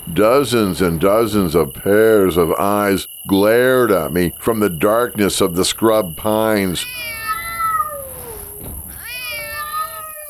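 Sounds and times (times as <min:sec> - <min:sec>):
speech: 0:00.1 - 0:07.2
feral cats meowing: 0:06.5 - 0:10.2.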